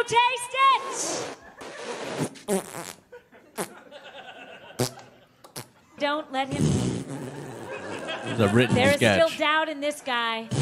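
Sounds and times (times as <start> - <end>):
speech: 0.0 - 1.4, 6.1 - 7.5, 8.2 - 10.6
laughter-like vocal sounds: 1.1 - 2.2, 2.8 - 5.8, 6.6 - 9.2
loud sputtering farts: 1.1 - 3.0, 4.8 - 5.7, 6.5 - 8.1.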